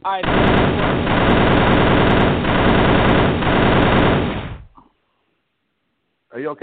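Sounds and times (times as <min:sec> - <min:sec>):
speech: 0:00.0 - 0:01.4, 0:06.4 - 0:06.6
automatic gunfire sound effect: 0:00.1 - 0:04.8.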